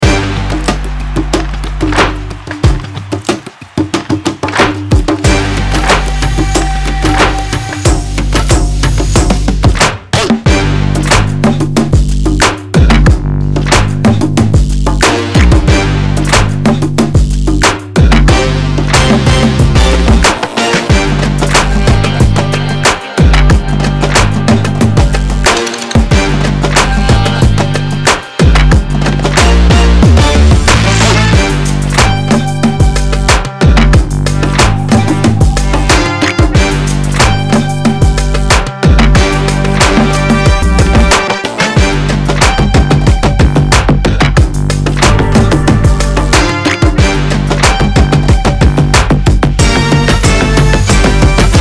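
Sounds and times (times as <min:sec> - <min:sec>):
drum percussion beat: 0:00.0 - 0:51.6.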